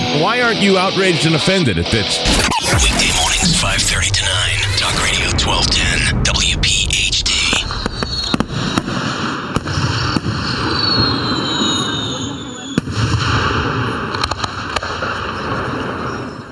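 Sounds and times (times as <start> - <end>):
speech: 0.1 - 6.8
fireworks exploding with roar, cracks and pops: 2.3 - 16.5
falling firework whistle: 7.5 - 13.5.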